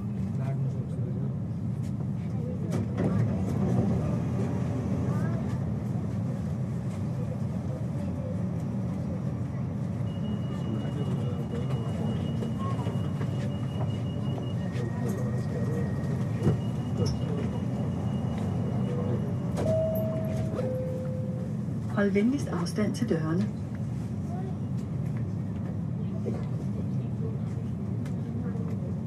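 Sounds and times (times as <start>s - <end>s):
Copenhagen metro train running on the airport route: 0.0s - 29.0s
faint tonal whines of metro train: 10.1s - 22.5s
speech: 22.0s - 23.6s.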